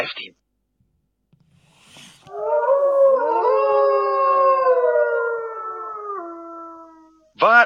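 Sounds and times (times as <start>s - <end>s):
speech: 0.0s - 0.4s
wolves howling together: 2.3s - 7.3s.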